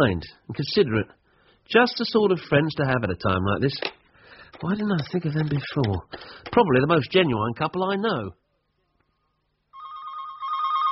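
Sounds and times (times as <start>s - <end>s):
speech: 0.0s - 8.4s
telephone ringing with a steady electronic trill: 9.7s - 10.8s.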